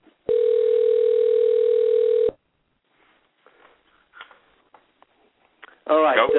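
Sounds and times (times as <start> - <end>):
line-filtered telephone ring tone: 0.3 - 2.4, 6.2 - 6.3.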